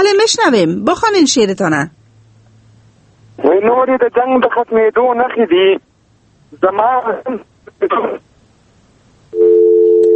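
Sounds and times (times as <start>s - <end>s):
speech: 0.0s - 2.0s, 3.4s - 5.9s, 6.5s - 8.3s
telephone tone after a phone call is cut off: 9.3s - 10.1s.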